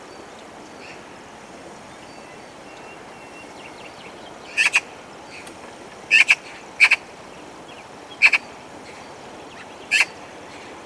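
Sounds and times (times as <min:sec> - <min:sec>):
Eurasian magpie Pica pica harsh clipped double notes: 0:04.6 - 0:04.9, 0:06.1 - 0:07.0.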